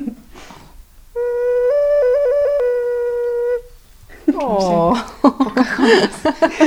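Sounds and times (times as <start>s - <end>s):
ceramic bird ocarina whistle playing: 1.0s - 4.0s
laughter: 4.3s - 6.6s
speech: 4.4s - 6.6s.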